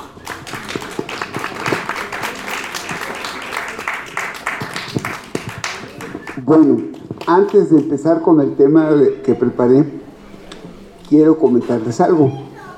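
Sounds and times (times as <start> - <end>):
audience applause welcoming a speaker: 0.0 - 8.2
speech: 6.4 - 10.1, 11.1 - 12.4.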